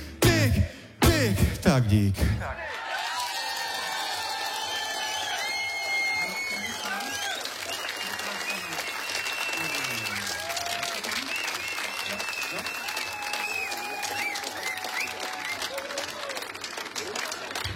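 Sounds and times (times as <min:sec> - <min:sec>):
speech: 0:01.2 - 0:02.7
audience cheers and whoops: 0:02.6 - 0:16.6
live audience applauding: 0:02.6 - 0:17.7.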